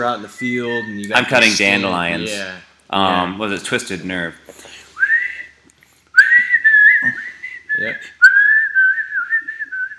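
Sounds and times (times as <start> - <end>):
speech: 0.0 - 4.8, 7.8 - 8.2
person whistling a melody: 5.0 - 5.5, 6.2 - 9.9.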